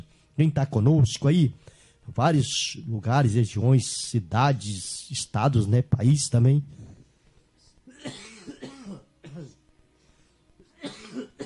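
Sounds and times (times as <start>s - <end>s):
speech: 0.4s - 6.9s
heavy harsh coughing: 7.9s - 9.6s, 10.6s - 11.4s.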